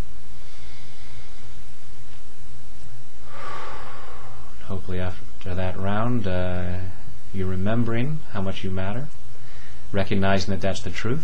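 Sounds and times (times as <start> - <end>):
steady low hum: 0.0 - 11.2
deep breath in and out: 0.2 - 2.0, 3.0 - 4.8, 9.3 - 9.9
speech: 4.9 - 9.2, 9.9 - 11.2.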